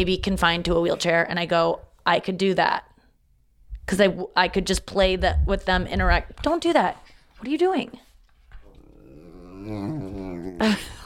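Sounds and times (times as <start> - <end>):
speech: 0.0 - 2.9, 3.9 - 8.0, 9.6 - 11.0
dogs growling and snarling while fighting: 8.5 - 11.0.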